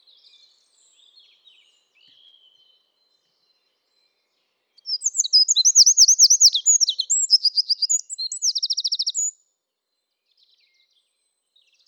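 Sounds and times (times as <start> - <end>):
Eurasian wren Troglodytes troglodytes song: 4.9 - 9.3.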